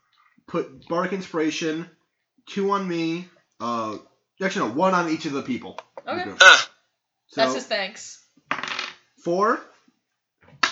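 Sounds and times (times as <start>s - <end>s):
speech: 0.5s - 6.7s, 7.3s - 8.2s, 9.2s - 9.7s
dice rattling across a hard tabletop: 8.5s - 9.1s.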